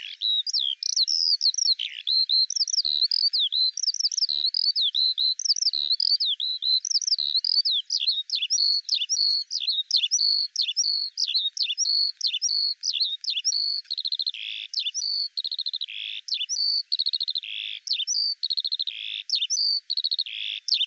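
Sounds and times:
Eurasian skylark song: 0:00.0 - 0:20.8.

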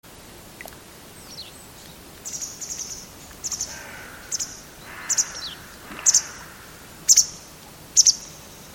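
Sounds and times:
steady background hiss: 0:00.0 - 0:08.7
bird giving short very high chirps: 0:02.3 - 0:07.4.

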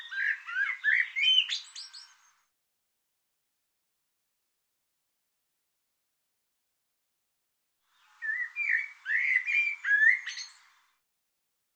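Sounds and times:
bird chirping: 0:00.0 - 0:02.5, 0:07.9 - 0:11.0.

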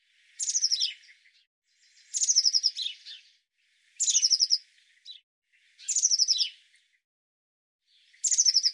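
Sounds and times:
Eurasian blue tit calling: 0:00.4 - 0:01.1, 0:02.0 - 0:03.2, 0:04.0 - 0:05.2, 0:05.8 - 0:06.6, 0:08.2 - 0:08.7.

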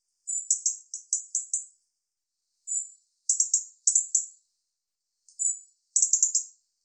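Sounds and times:
European robin stuttering song: 0:00.2 - 0:01.9, 0:02.5 - 0:04.6, 0:05.2 - 0:06.8.

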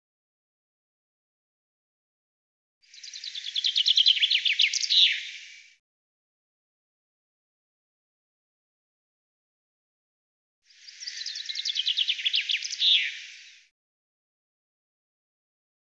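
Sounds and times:
common chaffinch song: 0:02.8 - 0:05.8, 0:10.7 - 0:13.7.

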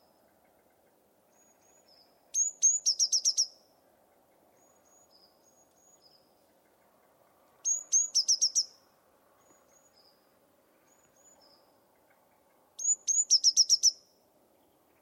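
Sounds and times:
quiet low hum: 0:00.0 - 0:02.4, 0:03.6 - 0:13.1
bird high chirps and soft thin notes: 0:00.0 - 0:15.0.

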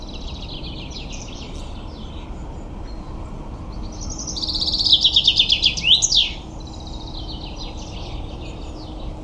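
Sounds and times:
common chaffinch song: 0:00.0 - 0:09.2.

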